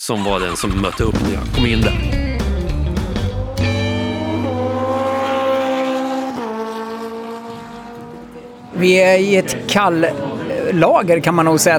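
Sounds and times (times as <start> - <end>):
speech: 0.0 - 2.2, 8.8 - 11.7
big motorcycle engine revving at cold-storage premises in Odensbacken Sweden: 0.0 - 8.8.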